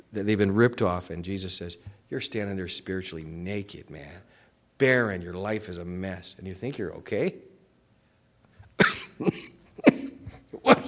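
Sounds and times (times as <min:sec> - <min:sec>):
speech: 0:00.1 - 0:07.5, 0:08.8 - 0:09.5
person coughing: 0:08.8 - 0:10.8.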